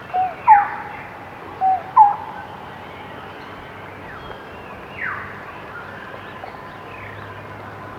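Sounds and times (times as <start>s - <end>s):
lineated barbet calling with paired mellow hoots: 0.0s - 2.6s.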